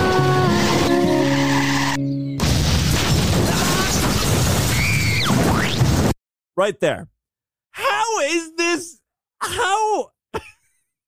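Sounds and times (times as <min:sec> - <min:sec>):
car tires skidding with a sustained squeal: 0:00.4 - 0:02.0
loud noisy impact: 0:02.4 - 0:06.2
speech: 0:06.6 - 0:07.2, 0:07.8 - 0:10.5.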